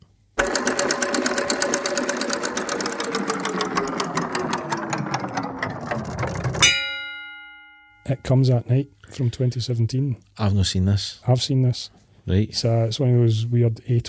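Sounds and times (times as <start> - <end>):
spinning prize wheel clicking: 0.4 - 7.1
ringing chime: 6.6 - 8.4
speech: 8.1 - 14.0.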